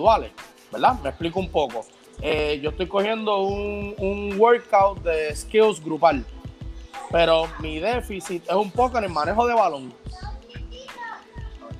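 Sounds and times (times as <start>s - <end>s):
speech: 0.0s - 6.4s, 7.1s - 10.2s
young boy chattering: 6.8s - 8.7s, 10.0s - 11.7s.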